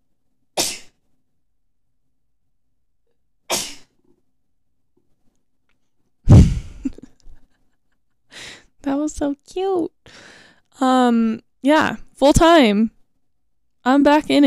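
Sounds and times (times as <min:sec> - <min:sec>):
person sneezing: 0:00.6 - 0:01.0, 0:03.5 - 0:03.9, 0:06.3 - 0:06.9
speech: 0:08.8 - 0:13.0, 0:13.8 - 0:14.4.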